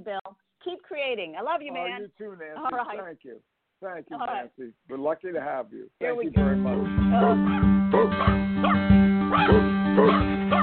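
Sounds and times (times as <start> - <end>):
speech: 0.0 - 10.4
dog barking: 7.2 - 10.6.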